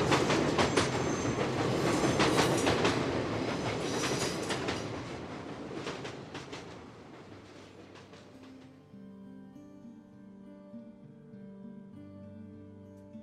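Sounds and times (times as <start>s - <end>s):
train rumble arriving at final station: 0.0s - 8.8s
train wheels clickety-clack on rails: 0.0s - 8.8s.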